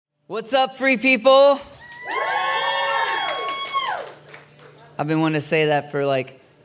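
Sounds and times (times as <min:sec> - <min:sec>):
speech: 0:00.3 - 0:02.6, 0:05.0 - 0:06.4
high whoops: 0:01.7 - 0:04.2
audience cheering and shouting: 0:01.8 - 0:04.1.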